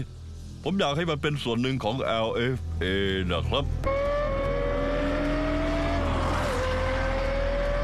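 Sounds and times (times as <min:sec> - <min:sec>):
speech: 0:00.0 - 0:04.0
Formula One race car engine roaring: 0:03.8 - 0:07.8.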